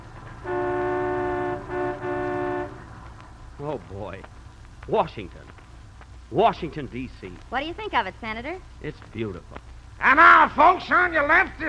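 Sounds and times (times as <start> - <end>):
sightseeing bus horn honking in Washington D.C.: 0.0 - 3.1
faint sightseeing bus engine rumble: 0.0 - 11.6
speech: 3.7 - 5.6, 6.3 - 11.6.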